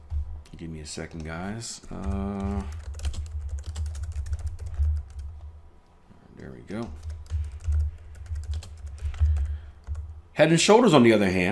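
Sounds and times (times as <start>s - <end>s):
typing on a keyboard: 0.0s - 5.4s, 6.8s - 10.1s
low hum: 0.0s - 11.4s
speech: 0.6s - 2.9s, 6.4s - 7.1s, 10.4s - 11.4s.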